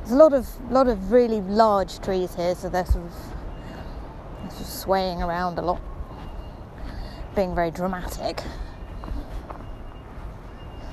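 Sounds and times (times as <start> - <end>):
outdoor traffic rumble: 0.0 - 10.9
outdoor wind: 0.0 - 10.9
speech: 0.1 - 3.4, 4.5 - 5.9, 7.4 - 8.6
electronic beeping from a reversing lorry unloading pallets of concrete blocks: 3.2 - 10.9.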